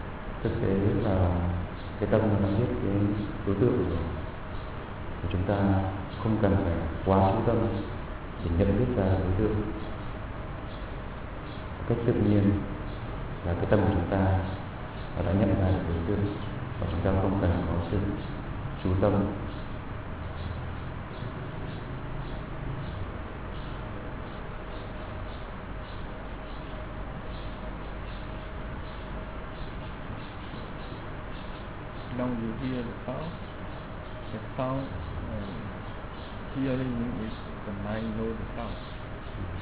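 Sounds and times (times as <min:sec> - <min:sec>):
birds chirping: 0:00.0 - 0:39.5
steady low hum: 0:00.0 - 0:39.5
speech: 0:00.4 - 0:04.3, 0:05.2 - 0:09.8, 0:11.9 - 0:12.7, 0:13.4 - 0:14.6, 0:15.2 - 0:19.4, 0:34.6 - 0:35.1, 0:36.6 - 0:39.5.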